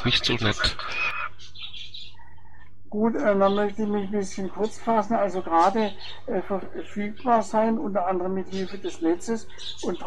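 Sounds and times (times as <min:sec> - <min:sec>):
speech: 0:00.0 - 0:01.2, 0:02.9 - 0:10.0
birds singing: 0:00.0 - 0:10.0
faint low hum: 0:00.0 - 0:10.0.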